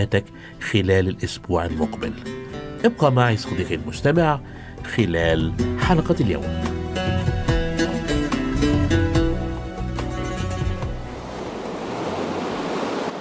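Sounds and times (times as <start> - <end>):
speech: 0.0 - 6.8
musical passage: 0.0 - 11.4
ocean waves breaking: 6.6 - 13.2.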